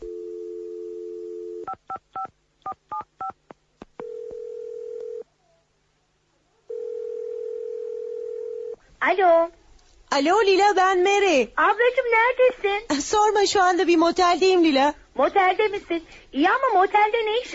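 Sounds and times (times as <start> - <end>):
telephone dial tone: 0.0 - 1.7, 4.0 - 5.2, 6.7 - 8.8
speech: 9.0 - 17.5.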